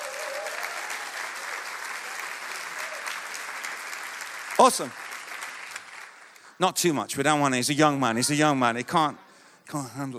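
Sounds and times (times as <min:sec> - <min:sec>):
audience applause for a drummer's performance: 0:00.0 - 0:06.6
speech: 0:04.6 - 0:05.0, 0:06.6 - 0:10.1.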